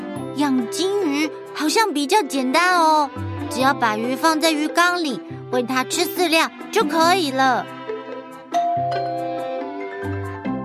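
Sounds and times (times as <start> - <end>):
speech: 0.4 - 7.8
doorbell chiming a short melody: 8.5 - 10.2.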